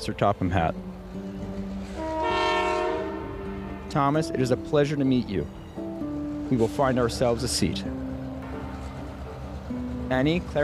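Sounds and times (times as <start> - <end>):
speech: 0.0 - 0.9, 3.9 - 5.6, 6.5 - 8.0, 10.1 - 10.6
steam train pulling in with a rumbling chug: 0.8 - 10.6
steam train whistle: 1.9 - 4.0.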